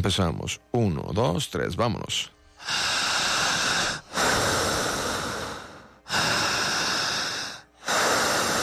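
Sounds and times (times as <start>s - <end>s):
speech: 0.0s - 3.1s
loud deep exaggerated breathing: 2.4s - 8.6s.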